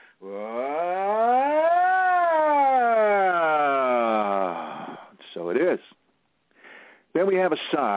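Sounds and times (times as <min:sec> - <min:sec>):
voice performing a vocal siren as a toning exercise: 0:00.0 - 0:05.1
speech: 0:07.2 - 0:07.9.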